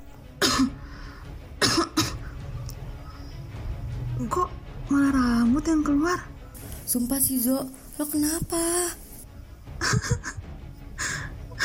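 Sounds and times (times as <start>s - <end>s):
person coughing to force out something stuck in the throat after drinking tea: 0.4s - 0.8s, 1.6s - 2.3s
speech: 4.2s - 6.3s, 6.9s - 9.0s
laughter: 9.8s - 10.5s.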